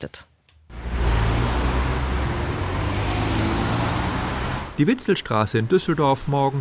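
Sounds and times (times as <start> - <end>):
speech: 0.0 - 0.3, 4.8 - 6.6
heavy road traffic of cars and heavier vehicles: 0.7 - 5.4.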